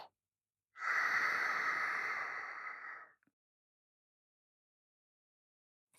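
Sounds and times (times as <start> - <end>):
deep slow breath inhale: 0.8 - 3.1.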